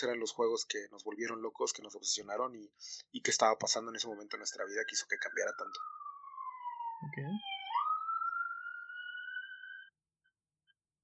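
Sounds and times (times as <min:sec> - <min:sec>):
speech: 0:00.0 - 0:06.0, 0:07.0 - 0:07.5
ambulance siren wailing as it passes: 0:04.1 - 0:09.9.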